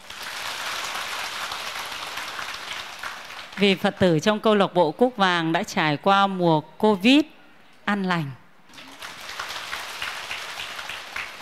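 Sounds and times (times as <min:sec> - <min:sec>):
audience at a Buddhist gathering applauding: 0:00.0 - 0:03.6, 0:08.7 - 0:11.4
speech: 0:03.6 - 0:08.4.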